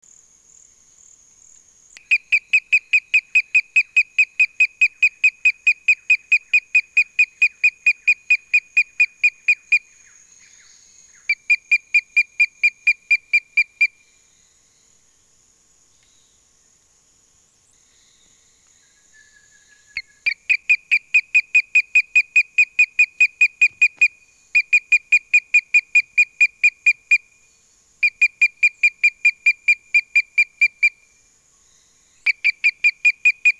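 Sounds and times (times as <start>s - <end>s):
Rhinella magnussoni calling: 2.0s - 10.0s, 11.2s - 14.0s, 20.0s - 27.3s, 28.0s - 31.0s, 32.3s - 33.5s.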